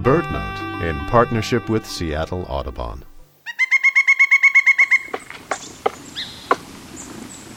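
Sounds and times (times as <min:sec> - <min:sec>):
speech: 0:00.1 - 0:03.1
faint birdsong: 0:03.4 - 0:07.5
loud ringing bird calls: 0:03.5 - 0:06.6
pileated woodpecker whacking its bill into tree: 0:04.7 - 0:06.7.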